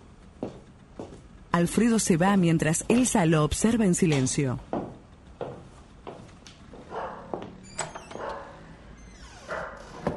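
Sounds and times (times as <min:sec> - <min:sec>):
speech: 0:01.5 - 0:04.7
dog barking with sharper yelps: 0:06.9 - 0:07.4, 0:08.1 - 0:08.7, 0:09.4 - 0:10.0.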